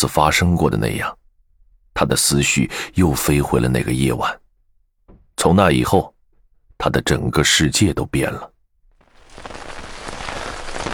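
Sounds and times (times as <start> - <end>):
speech: 0.0 - 1.2, 2.0 - 4.4, 5.4 - 6.1, 6.8 - 8.5
rain falling on a military tent on a cold night: 9.0 - 10.9.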